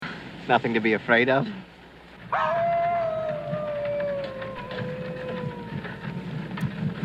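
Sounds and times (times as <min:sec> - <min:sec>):
speech: 0:00.5 - 0:01.7, 0:02.3 - 0:02.8
wolf howling: 0:02.2 - 0:06.7.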